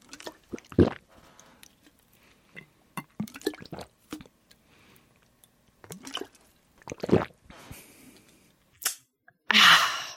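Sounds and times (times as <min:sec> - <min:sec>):
water bubbling while drunk through a straw fitted with a flavour pod: 0:00.0 - 0:01.1, 0:03.0 - 0:04.3, 0:05.8 - 0:07.4
sucking as water is drunk through a straw fitted with a flavour pod: 0:06.8 - 0:07.4.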